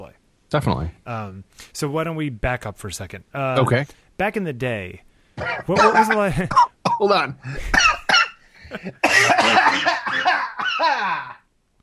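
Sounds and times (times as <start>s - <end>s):
speech: 0.0s - 7.9s, 8.7s - 11.4s
person coughing while choking on water: 5.4s - 11.4s.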